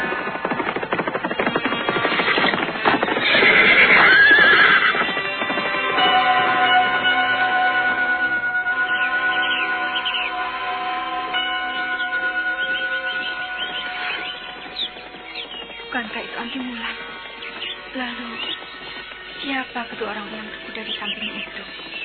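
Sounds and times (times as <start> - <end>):
horses neighing while ridden: 0.0 - 6.0, 12.0 - 19.4
horse hooves clip-clopping: 0.0 - 7.4, 8.6 - 22.0.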